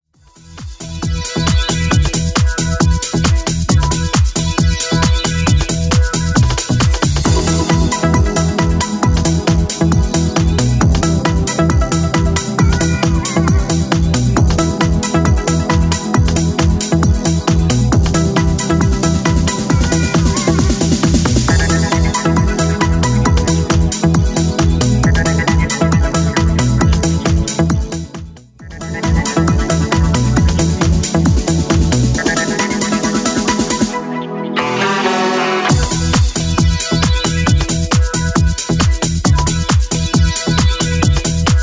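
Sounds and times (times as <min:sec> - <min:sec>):
electronic dance music: 0:00.2 - 0:41.6.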